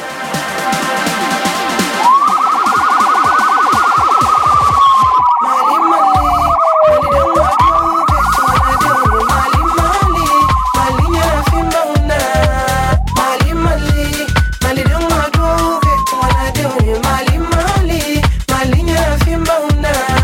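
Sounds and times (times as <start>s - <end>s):
rhythmic thumping background: 0.2s - 20.2s
siren sound effect wailing: 1.9s - 17.5s.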